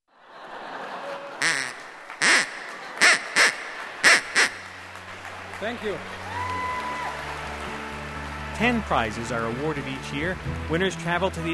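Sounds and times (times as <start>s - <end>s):
laughter: 0.1s - 6.0s
stand-in duck quacking: 1.4s - 4.8s
speech: 5.6s - 6.2s, 8.6s - 11.5s.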